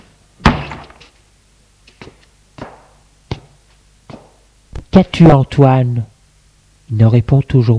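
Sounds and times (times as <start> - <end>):
heavy door swinging shut with a thud: 0.4 - 1.0
speech: 5.0 - 6.1, 6.9 - 7.7.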